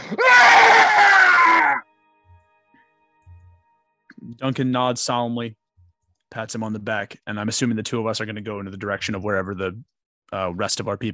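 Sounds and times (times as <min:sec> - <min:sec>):
loud sustained human scream: 0:00.0 - 0:01.8
speech: 0:04.4 - 0:05.6, 0:06.3 - 0:11.1.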